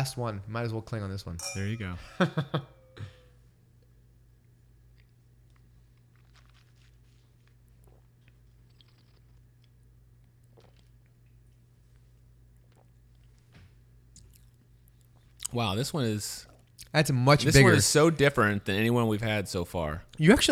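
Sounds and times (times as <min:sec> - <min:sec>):
speech: 0:00.0 - 0:03.1, 0:15.5 - 0:20.5
laughter: 0:02.0 - 0:03.1
person slurping and smacking while tasting wine: 0:05.0 - 0:15.6.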